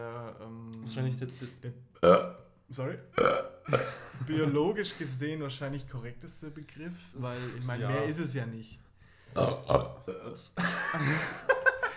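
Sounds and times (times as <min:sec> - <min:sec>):
speech: 0:00.9 - 0:11.5
loud burps: 0:02.0 - 0:02.5, 0:03.1 - 0:04.2, 0:09.4 - 0:10.4
laughter: 0:10.6 - 0:11.9.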